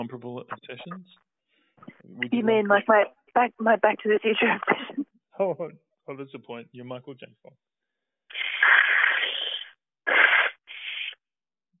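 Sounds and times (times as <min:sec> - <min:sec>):
speech: 0:00.0 - 0:04.8, 0:05.4 - 0:07.7
person blowing their nose: 0:08.3 - 0:11.2.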